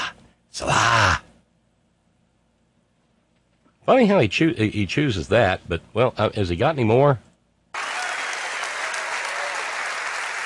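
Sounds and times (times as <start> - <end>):
speech: 3.9 - 7.3
large crowd applauding: 7.8 - 10.4.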